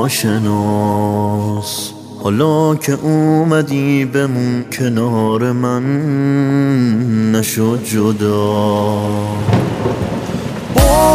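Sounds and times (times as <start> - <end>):
speech: 0.0 - 10.2
steady rain: 8.1 - 11.1
thunder crack and rumbling: 9.4 - 11.1.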